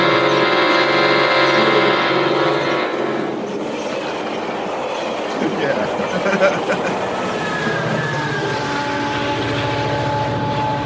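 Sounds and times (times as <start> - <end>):
train horn blaring a sustained chord: 0.0 - 4.0, 7.0 - 10.8
rumbling rail noise: 0.0 - 10.8
laughter: 5.3 - 8.6.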